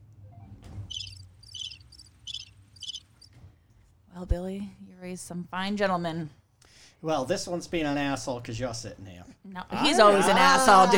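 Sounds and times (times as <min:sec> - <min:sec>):
low rumbling hum: 0:00.0 - 0:10.9
crickets chirping: 0:00.9 - 0:03.3
speech: 0:04.2 - 0:06.4, 0:07.0 - 0:10.9.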